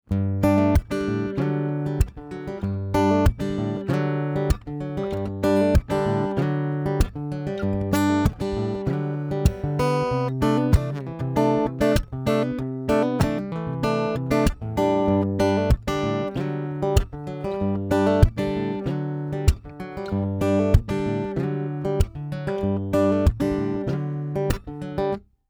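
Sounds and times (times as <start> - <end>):
percussive Ibanez AAM700CE NT acoustic guitar through undersaddle pickup: 0.0 - 25.2.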